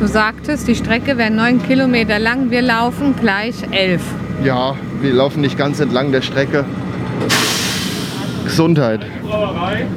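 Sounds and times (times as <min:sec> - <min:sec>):
speech: 0:00.0 - 0:07.6, 0:08.4 - 0:09.9
loud burst of hissing air from a 1960s railbus: 0:07.3 - 0:08.5.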